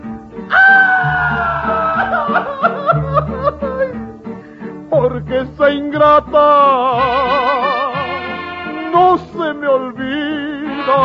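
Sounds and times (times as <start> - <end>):
band music: 0.0 - 11.0
festive Mexican grito shout: 0.5 - 2.9
laughter: 0.9 - 4.0
speech: 5.4 - 7.4.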